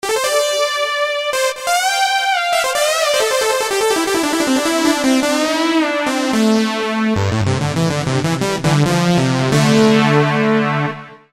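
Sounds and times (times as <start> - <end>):
saw synth lead: 0.0 - 11.1.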